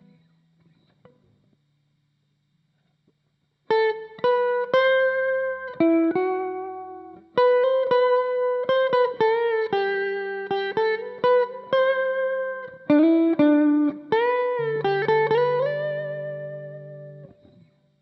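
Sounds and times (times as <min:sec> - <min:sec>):
electric guitar amp: 0:03.7 - 0:18.0.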